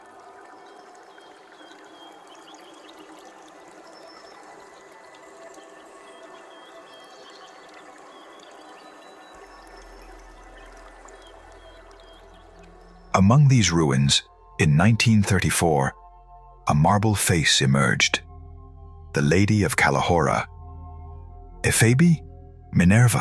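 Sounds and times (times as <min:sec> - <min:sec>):
water flowing through an underground sewer channel beneath a hill: 0:00.0 - 0:13.2
speech: 0:13.2 - 0:16.0, 0:16.7 - 0:18.2, 0:19.1 - 0:20.5, 0:21.6 - 0:23.2.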